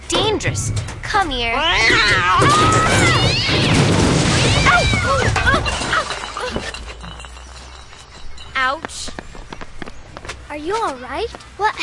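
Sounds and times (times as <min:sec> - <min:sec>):
loud crash and clattering impacts: 0:00.1 - 0:07.4
speech: 0:00.4 - 0:05.4, 0:08.6 - 0:09.1, 0:10.6 - 0:11.8
cat yowling and screeching in an attack: 0:01.6 - 0:05.3.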